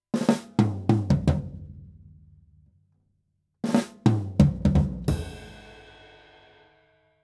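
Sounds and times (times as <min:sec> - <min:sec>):
stereo drum break on AKG 214 microphone: 0:00.2 - 0:01.7, 0:03.6 - 0:06.1.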